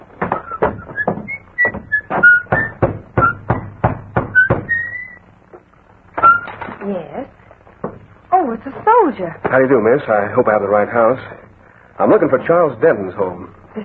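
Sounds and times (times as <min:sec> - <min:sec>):
man knocking on the wooden door of a small white cottage: 0:00.2 - 0:05.0, 0:07.8 - 0:08.1
thin whistling tones: 0:00.4 - 0:03.7, 0:04.3 - 0:05.3
speech: 0:08.6 - 0:11.4, 0:12.0 - 0:13.8.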